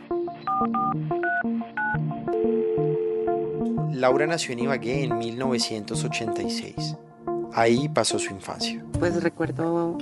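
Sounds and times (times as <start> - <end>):
telephone keypad dialing tones for a prison call: 0.5 - 3.6
speech: 0.6 - 2.9, 3.7 - 9.9.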